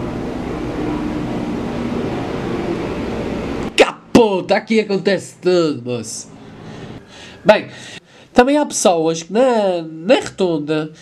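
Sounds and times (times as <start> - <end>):
firefighting helicopter passing overhead droning: 0.0 - 8.4
speech: 4.2 - 6.4, 7.4 - 11.0.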